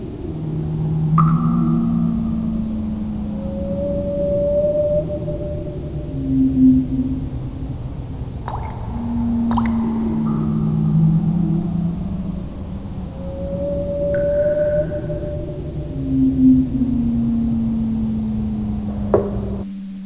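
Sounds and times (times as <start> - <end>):
water dripping in a canyon: 0.3 - 19.7.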